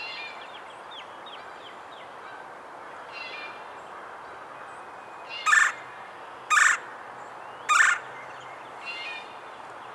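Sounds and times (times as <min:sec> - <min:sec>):
Red-bellied woodpecker Melanerpes carolinus churr call: 0:07.7 - 0:08.0.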